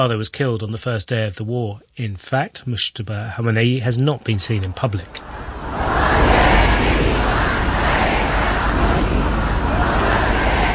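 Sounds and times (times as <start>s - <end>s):
speech: 0.0s - 6.4s
large crowd of mourners shouting slogans: 5.2s - 10.7s.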